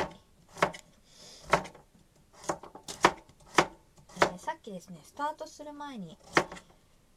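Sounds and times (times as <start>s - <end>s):
knife chopping vegetables for pork miso soup on cutting board: 0.0s - 0.8s, 1.4s - 4.4s, 6.2s - 6.6s
speech: 4.7s - 6.6s.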